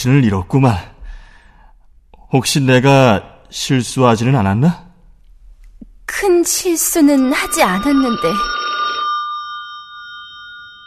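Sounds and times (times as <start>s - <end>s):
speech: 0.0s - 0.9s, 2.3s - 4.8s, 6.1s - 8.6s
telephone bell ringing: 6.8s - 10.8s.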